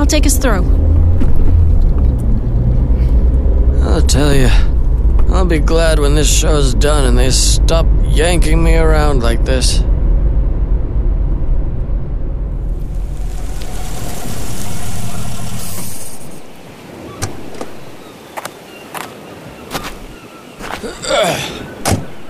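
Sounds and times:
car engine idling with a low steady rumble: 0.0s - 16.6s
speech: 0.1s - 0.8s, 3.9s - 4.7s, 5.3s - 9.9s.

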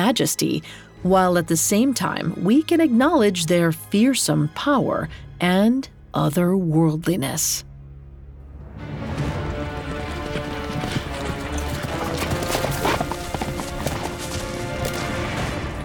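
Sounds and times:
speech: 0.0s - 7.7s
galloping hooves of a centaur: 8.8s - 15.8s.

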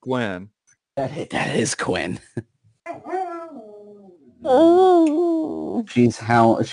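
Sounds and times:
speech: 0.0s - 3.1s, 4.4s - 6.7s
dog barking into a drawn-out whining yowl: 2.9s - 4.2s.

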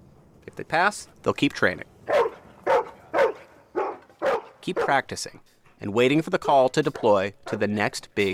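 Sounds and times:
speech: 0.5s - 1.9s, 4.7s - 8.3s
disaster-response dog in training barking: 2.1s - 5.0s.

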